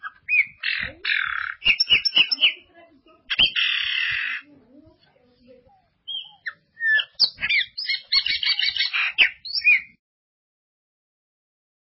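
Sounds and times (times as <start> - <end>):
Ultramarine grosbeak giving faint notes and a clear whistle: 0.0 - 2.6, 6.1 - 10.0
Ultramarine grosbeak giving harsh, buzzy chirps: 0.0 - 2.7, 3.3 - 4.5, 6.0 - 10.0.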